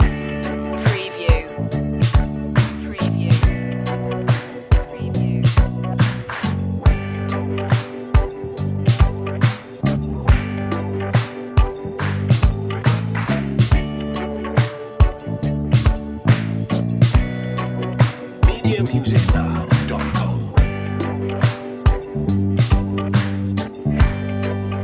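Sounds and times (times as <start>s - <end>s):
smooth groove music loop: 0.0s - 24.8s.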